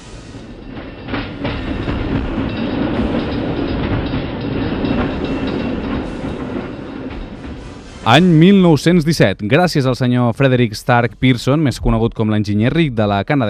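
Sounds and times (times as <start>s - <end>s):
train wheels clacking over rail joints: 0.0s - 8.5s
train rumbling along railway tracks: 0.0s - 12.0s
speech: 8.0s - 13.4s.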